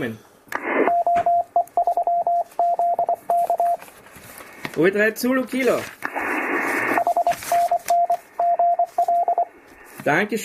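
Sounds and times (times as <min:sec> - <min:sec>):
speech: 0:00.0 - 0:00.3, 0:04.8 - 0:06.0, 0:10.0 - 0:10.4
burst of radio noise: 0:00.6 - 0:01.0, 0:06.0 - 0:07.7
Morse code tone from an amateur radio CW transmission: 0:00.7 - 0:03.8, 0:06.8 - 0:09.5.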